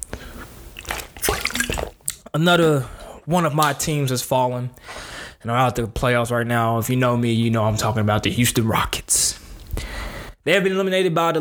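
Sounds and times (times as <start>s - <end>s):
water being poured out: 0.0s - 2.3s
speech: 2.3s - 9.4s, 10.4s - 11.4s.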